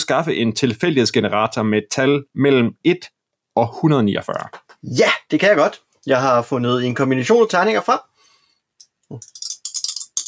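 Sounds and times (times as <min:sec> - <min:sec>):
speech: 0:00.1 - 0:08.1, 0:09.1 - 0:09.5
obsidian dice clattering across a hard surface: 0:09.2 - 0:10.2.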